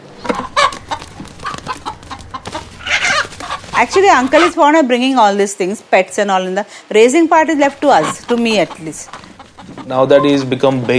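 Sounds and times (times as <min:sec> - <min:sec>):
rooster clucking: 0:00.2 - 0:04.8, 0:07.5 - 0:10.9
speech: 0:03.8 - 0:09.2, 0:09.9 - 0:10.9.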